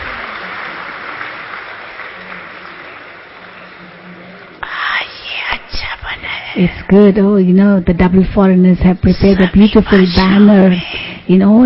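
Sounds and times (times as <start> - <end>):
voices cheering: 0.0 - 4.2
audience clapping: 0.0 - 4.6
speech: 6.6 - 11.6.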